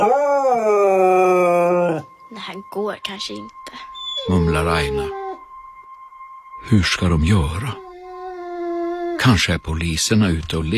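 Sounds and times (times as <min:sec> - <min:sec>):
speech: 0:00.0 - 0:01.1, 0:02.4 - 0:05.2, 0:06.6 - 0:07.8, 0:09.2 - 0:10.7
dog howling and whimpering: 0:00.0 - 0:02.2, 0:03.9 - 0:05.5, 0:07.4 - 0:09.4.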